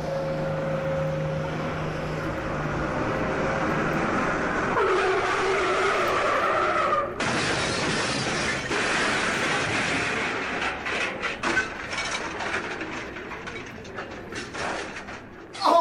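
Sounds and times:
bus engine roaring: 0.0s - 7.4s
bus skidding with long loud tire screech: 4.4s - 7.8s
bus crashing with shattering: 7.2s - 15.7s.

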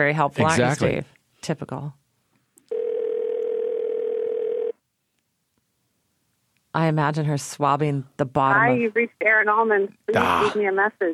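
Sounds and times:
speech: 0.0s - 2.0s, 6.8s - 11.1s
phone call ringing tone: 2.7s - 4.8s.

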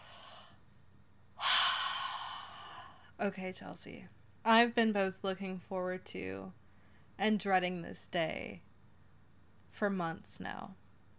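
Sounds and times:
deep breath drawn in: 0.0s - 0.6s, 1.4s - 3.1s
speech: 3.2s - 6.6s, 7.2s - 8.7s, 9.7s - 10.8s.

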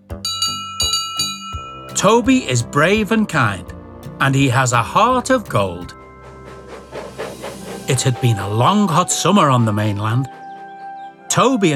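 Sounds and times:
bright metallic bell on a steam tram engine ringing: 0.2s - 2.6s
speech: 2.0s - 6.0s, 7.9s - 10.4s, 11.4s - 11.7s.

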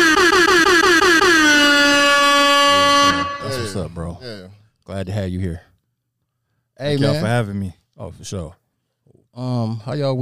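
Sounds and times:
air horn sound effect blasts: 0.0s - 3.9s
speech: 4.9s - 5.7s, 6.8s - 8.6s, 9.4s - 10.2s.

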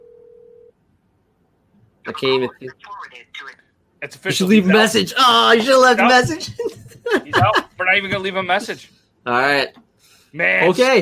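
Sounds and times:
telephone ring tone of an outgoing call on speakerphone: 0.0s - 0.7s
speech: 2.1s - 11.0s
laughter: 5.5s - 8.3s.

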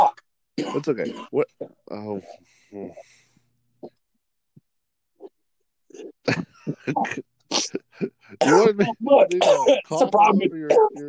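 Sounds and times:
thick congested coughing: 0.0s - 1.8s, 5.9s - 11.0s
speech: 0.6s - 3.2s, 5.9s - 11.0s.

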